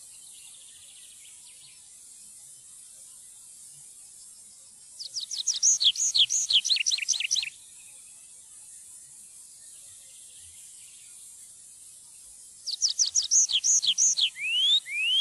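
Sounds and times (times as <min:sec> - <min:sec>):
tree pipit singing: 0:05.0 - 0:07.5, 0:12.6 - 0:15.2.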